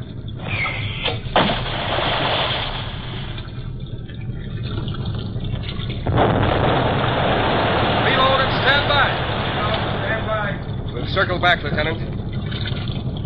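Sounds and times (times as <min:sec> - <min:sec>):
depth bombs released from a ship exploding: 0:00.0 - 0:13.2.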